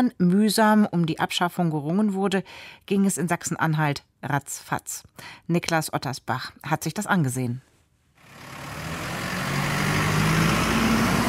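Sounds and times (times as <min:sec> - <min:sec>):
speech: 0:00.0 - 0:07.7
truck engine rumbling as the truck pulls out of a yard: 0:08.2 - 0:11.2.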